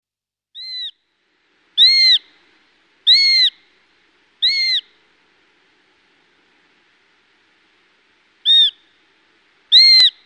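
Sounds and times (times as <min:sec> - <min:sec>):
Eurasian sparrowhawk whining calls: 0:00.6 - 0:01.0, 0:01.8 - 0:02.3, 0:03.0 - 0:03.6, 0:04.4 - 0:04.9, 0:08.4 - 0:08.8, 0:09.7 - 0:10.2.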